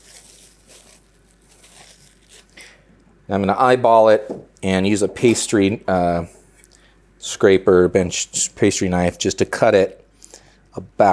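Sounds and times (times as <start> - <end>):
galette pastry crust wrapping crinkling and rustling: 0.0 - 2.8
speech: 3.3 - 6.4, 7.3 - 10.0, 10.8 - 11.1.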